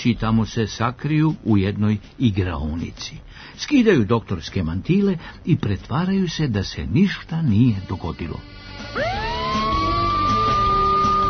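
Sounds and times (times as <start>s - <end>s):
speech: 0.0s - 9.6s
police car sirens wailing outside: 8.5s - 11.2s.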